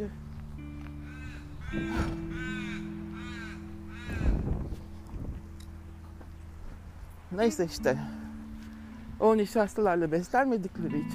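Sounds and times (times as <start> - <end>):
speech: 0.0 - 0.2, 1.7 - 2.2, 7.3 - 8.2, 9.2 - 11.1
crow cawing in harsh repeated calls: 1.0 - 4.6.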